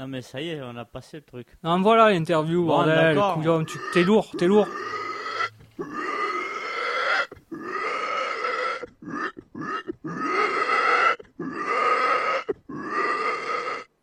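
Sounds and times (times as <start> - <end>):
speech: 0.0 - 5.1
person imitating pig squeals and grunts: 3.1 - 14.0.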